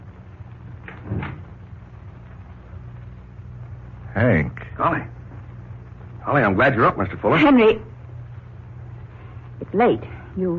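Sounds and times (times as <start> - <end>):
hiss: 0.0 - 10.5
unlocked door opening with knock and creak: 0.8 - 1.6
speech: 4.2 - 5.2, 6.3 - 7.9, 9.8 - 10.5.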